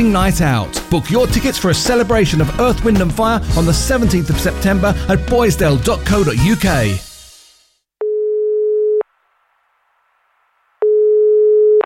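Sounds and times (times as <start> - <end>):
speech: 0.0 - 7.1
work phone line ringing tone before voicemail: 8.0 - 9.0, 10.8 - 11.8.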